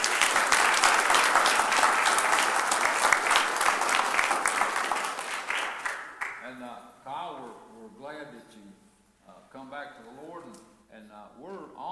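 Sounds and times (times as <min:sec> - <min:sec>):
room full of people applauding: 0:00.0 - 0:06.4.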